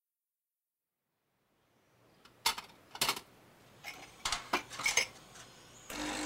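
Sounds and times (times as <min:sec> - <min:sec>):
cups and cutlery clinking as coffee is made: 0:02.5 - 0:05.3.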